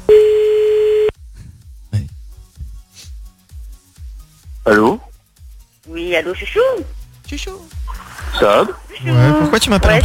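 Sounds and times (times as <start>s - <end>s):
telephone ringing tone while placing a call: 0.0s - 1.1s
speech: 4.7s - 5.0s, 6.2s - 10.0s.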